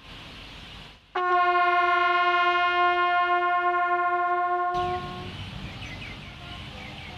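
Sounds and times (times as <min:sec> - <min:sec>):
loud bright bugle note: 0:01.2 - 0:05.4.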